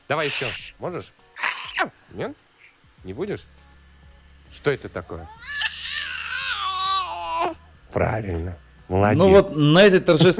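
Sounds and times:
faint steady hum: 0:00.0 - 0:10.3
speech: 0:00.1 - 0:03.6, 0:04.5 - 0:05.5, 0:07.4 - 0:10.3
baby girl crying while pulling at a headset with a microphone: 0:01.4 - 0:01.9, 0:05.2 - 0:07.6.

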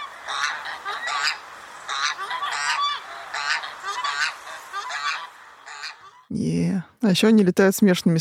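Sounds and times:
swan goose giving nasal honking calls: 0:00.0 - 0:06.3
speech: 0:06.3 - 0:08.1.

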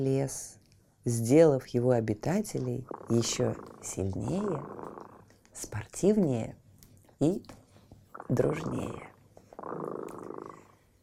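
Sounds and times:
speech: 0:00.0 - 0:06.6, 0:07.2 - 0:07.6, 0:08.3 - 0:09.9
cat purring: 0:02.3 - 0:06.0, 0:08.0 - 0:11.0.

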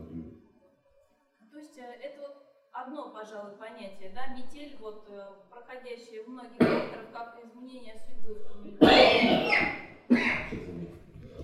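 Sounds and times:
speech: 0:02.8 - 0:11.0
loud harsh coughs against the microphone: 0:06.6 - 0:07.0, 0:08.8 - 0:10.8.

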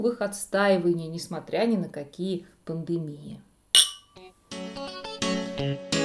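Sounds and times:
speech: 0:00.0 - 0:03.5, 0:05.6 - 0:05.9
glasses of rosé wine clinking in a toast: 0:03.8 - 0:04.1.

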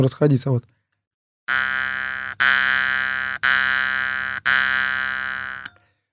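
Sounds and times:
speech: 0:00.0 - 0:00.8, 0:01.5 - 0:01.7
jaw harp being plucked: 0:01.5 - 0:05.7.

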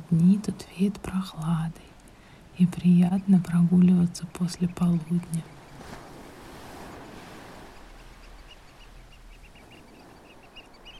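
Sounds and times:
soft sea waves washing onto the shore: 0:00.0 - 0:10.9
speech: 0:00.1 - 0:01.9, 0:02.6 - 0:06.0
faint bird chirps: 0:03.0 - 0:06.2, 0:07.4 - 0:10.9.

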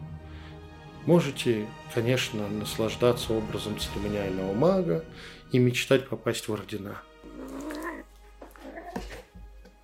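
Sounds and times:
speech: 0:01.0 - 0:07.1
cat caterwauling: 0:07.2 - 0:09.2.

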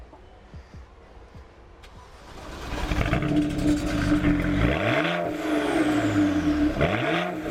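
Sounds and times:
BMW 335is engine starting: 0:01.8 - 0:04.4
BMW 335is exhaust idling and revving: 0:02.0 - 0:07.5.

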